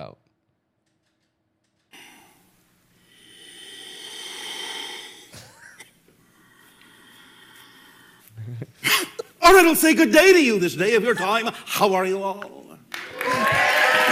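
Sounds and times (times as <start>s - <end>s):
heavy rasping wheezy breathing: 1.9s - 9.4s
snort: 3.1s - 8.2s
speech: 9.6s - 12.6s.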